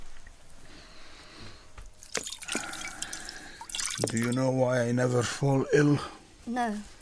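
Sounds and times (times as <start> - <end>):
water poured over hands, splashing and trickling: 2.0 - 4.8
speech: 4.0 - 7.0.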